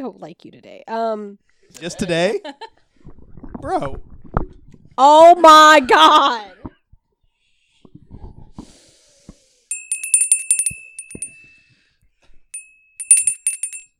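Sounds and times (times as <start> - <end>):
speech: 0.0 - 2.8, 3.6 - 4.1, 5.0 - 6.6
bell jangling: 9.7 - 11.5, 12.6 - 13.9.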